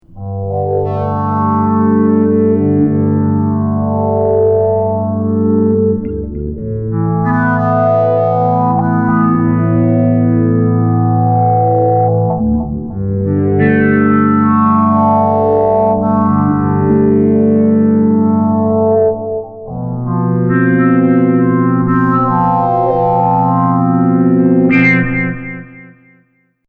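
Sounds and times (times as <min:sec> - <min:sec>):
slow polyphonic bass: 0:00.0 - 0:25.8.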